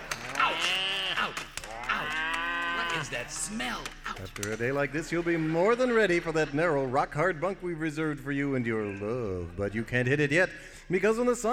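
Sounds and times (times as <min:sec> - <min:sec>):
herd of about a thousand moving cattle mooing: 0:00.3 - 0:03.2
speech: 0:03.0 - 0:11.5.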